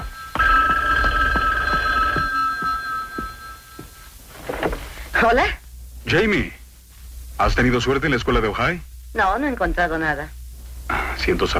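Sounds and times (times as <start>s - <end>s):
telephone ringing with an electronic tone for an incoming call: 0.0s - 4.8s
speech: 5.2s - 6.6s, 7.4s - 10.4s, 11.2s - 11.5s.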